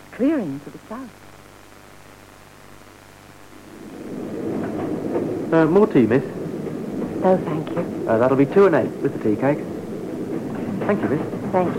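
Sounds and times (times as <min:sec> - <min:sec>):
steady rain: 0:00.0 - 0:11.7
speech: 0:00.2 - 0:01.2, 0:05.5 - 0:06.4, 0:07.2 - 0:09.7, 0:10.9 - 0:11.7
deep low rumble: 0:02.9 - 0:11.7.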